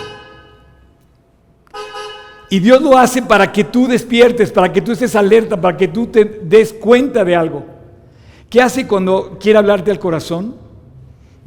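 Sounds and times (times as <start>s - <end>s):
car horn honking: 0.0s - 1.0s, 1.7s - 2.6s
speech: 2.5s - 7.7s, 8.5s - 10.6s.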